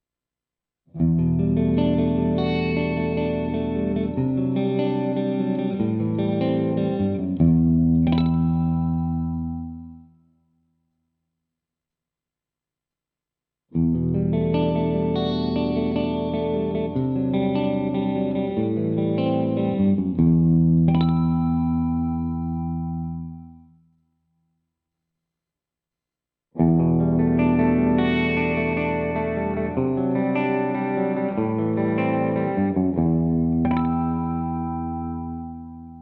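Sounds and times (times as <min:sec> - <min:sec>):
clean electric guitar through humbucker pickup: 0:01.0 - 0:10.1, 0:13.7 - 0:23.7, 0:26.6 - 0:36.0.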